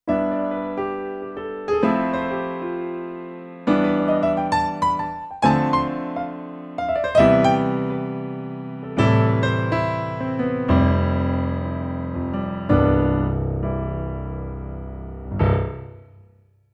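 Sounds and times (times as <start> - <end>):
bright piano: 0.0 - 16.7.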